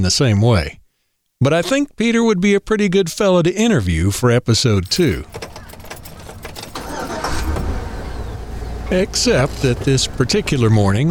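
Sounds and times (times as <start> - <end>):
speech: 0.0 - 0.8, 1.4 - 5.6, 8.9 - 11.1
truck engine cranking, starting and idling: 4.8 - 11.1.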